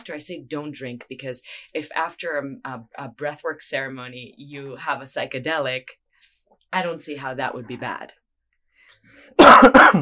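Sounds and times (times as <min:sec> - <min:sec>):
speech: 0:00.0 - 0:06.0, 0:06.7 - 0:08.2, 0:09.0 - 0:10.0
faint breathy lead-in: 0:08.7 - 0:09.4
person coughing: 0:09.4 - 0:10.0.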